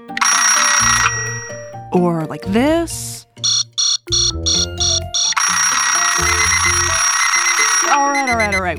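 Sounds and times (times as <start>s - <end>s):
alarm clock ringing with electronic tones: 0.1s - 1.7s, 3.4s - 8.7s
speech: 1.9s - 3.5s.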